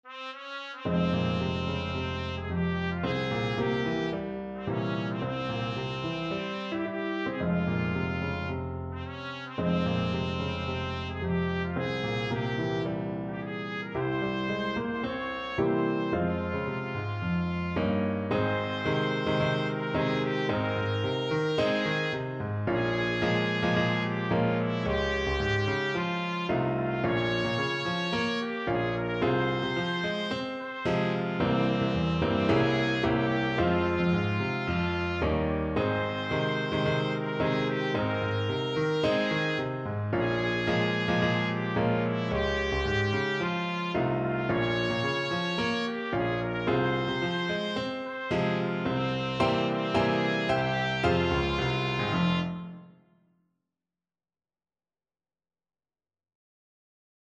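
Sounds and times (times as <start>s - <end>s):
trumpet melody: 0.0s - 53.1s.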